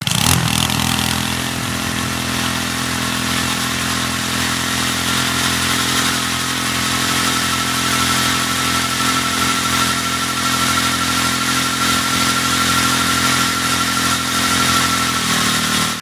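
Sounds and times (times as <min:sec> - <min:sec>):
engine accelerating: 0:00.0 - 0:16.0.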